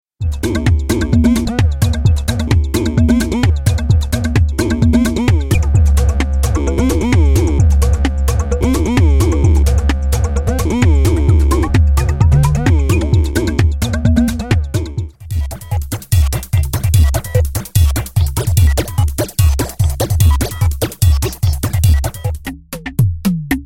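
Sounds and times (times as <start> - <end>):
drum machine dance loops: 0.2 - 23.6.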